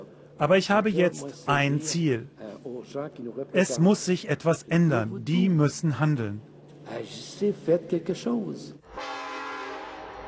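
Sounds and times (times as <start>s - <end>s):
speech: 0.4s - 9.1s
freight train sustained horn blast: 8.8s - 10.2s.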